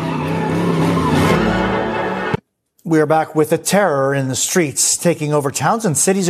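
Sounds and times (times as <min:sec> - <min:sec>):
car tires squealing during illegal street racing: 0:00.0 - 0:02.3
car engine roar: 0:00.0 - 0:02.4
speech: 0:02.9 - 0:06.2.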